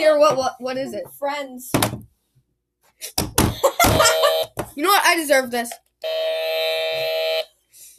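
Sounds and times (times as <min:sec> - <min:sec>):
speech: 0:00.0 - 0:02.1, 0:03.0 - 0:07.0
loud harsh game show buzzer: 0:03.8 - 0:04.6, 0:06.0 - 0:07.5.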